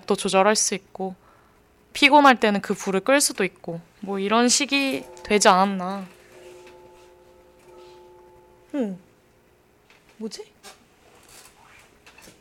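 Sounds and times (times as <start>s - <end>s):
speech: 0.1s - 1.2s, 2.0s - 6.2s, 8.7s - 9.1s, 10.2s - 10.8s
distant gong ringing outside: 4.7s - 9.1s.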